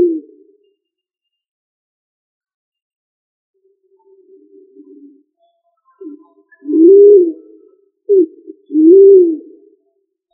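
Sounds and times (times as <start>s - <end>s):
pigeon cooing: 0.0s - 0.4s, 6.0s - 9.6s.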